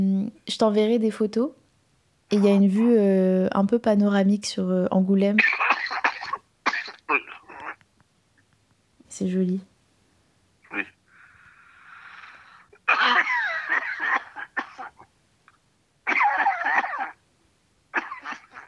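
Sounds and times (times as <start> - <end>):
speech: 0.0 - 1.6, 2.3 - 5.7, 7.1 - 7.4, 9.2 - 9.7, 10.7 - 11.0
heavy harsh hacking coughing: 5.4 - 7.8, 10.6 - 11.0, 12.2 - 15.1, 16.1 - 17.2, 17.9 - 18.6
wheezy drawn-in breath: 11.1 - 12.8.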